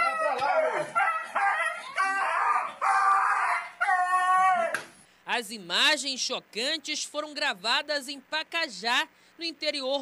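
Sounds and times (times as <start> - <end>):
dog yelping and howling in distress while being beaten: 0.0 - 4.8
speech: 5.4 - 10.0.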